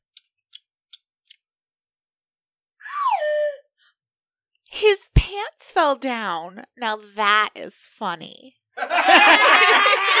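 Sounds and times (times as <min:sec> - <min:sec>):
scissors snipping: 0:00.0 - 0:01.4
speech: 0:04.8 - 0:10.1
laughter: 0:08.8 - 0:10.1.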